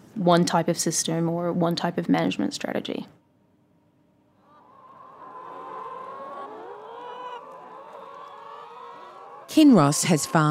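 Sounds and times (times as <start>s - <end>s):
speech: 0.2s - 3.2s, 9.6s - 10.4s
large flock of free-range hens clucking on a farm in central Victoria: 4.4s - 10.4s.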